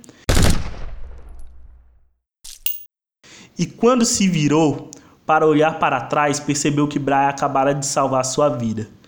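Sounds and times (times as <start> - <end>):
loud close gunshot with long echo: 0.3 - 1.5
speech: 3.6 - 9.0.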